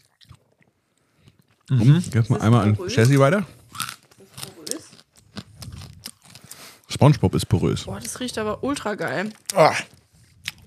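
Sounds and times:
soft chewing: 0.0 - 7.1, 7.9 - 10.6
speech: 1.7 - 3.6, 7.0 - 10.0
crisp bite into a sugary sweet with the back teeth: 3.7 - 6.6, 9.5 - 10.6.

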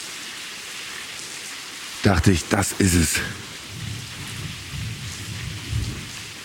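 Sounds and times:
steady falling rain: 0.0 - 6.4
speech: 2.0 - 3.6
rumbling thunder: 3.6 - 6.4.

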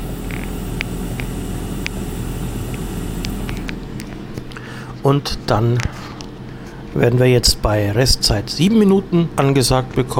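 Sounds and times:
food frying in the appliance's pan: 0.0 - 3.6
appliance motor hum: 0.0 - 5.0
speech: 5.0 - 6.1, 7.0 - 10.1.

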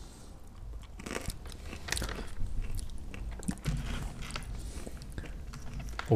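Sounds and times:
person chewing crunchy chickpea snacks: 0.5 - 6.1.

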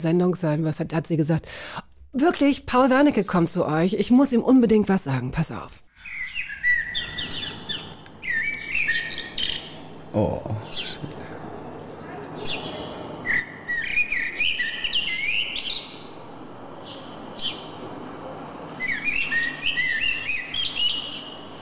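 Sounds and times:
speech: 0.0 - 5.8, 10.1 - 11.2
blackbird singing fluting phrases and trills: 6.0 - 16.1, 18.7 - 21.6
sparrows chirping: 6.0 - 17.9, 18.5 - 21.6.

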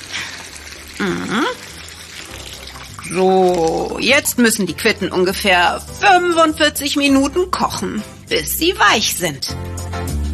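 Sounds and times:
water pouring into a cooking pot: 0.0 - 5.2
speech: 1.0 - 1.7, 3.1 - 9.7.

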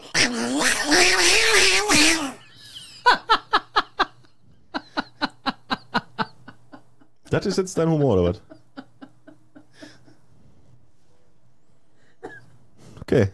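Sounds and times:
person's voice imitating fighting cats with a wavering yowl: 0.0 - 2.4
laughter: 2.4 - 10.2
speech: 7.4 - 8.5.

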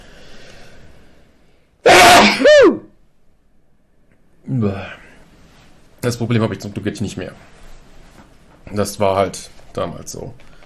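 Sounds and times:
person sneezing: 1.9 - 2.8
speech: 4.6 - 4.9, 6.1 - 7.6, 8.7 - 10.5.

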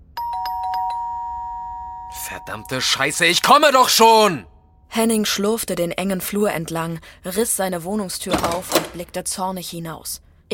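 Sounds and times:
electronic doorbell chiming and ringing: 0.1 - 3.0
speech: 2.1 - 10.5.

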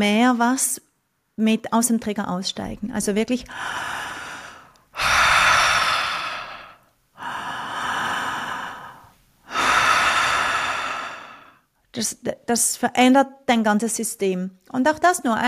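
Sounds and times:
speech: 0.0 - 4.0, 12.0 - 15.4
breathing in and out through the mouth as a calming exercise: 3.5 - 11.7.

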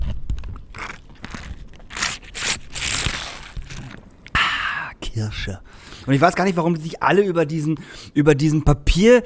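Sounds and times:
paper straw pierced into foil juice drink pouch: 0.0 - 4.4
plastic juice pouch crinkling as it is squeezed: 0.0 - 4.4
speech: 5.2 - 9.2.

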